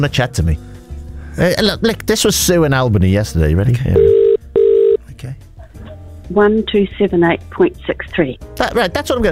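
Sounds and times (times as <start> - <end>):
speech: 0.0 - 0.7, 1.4 - 4.2, 6.3 - 9.3
electronic telephone tone from a phone call: 4.0 - 5.0.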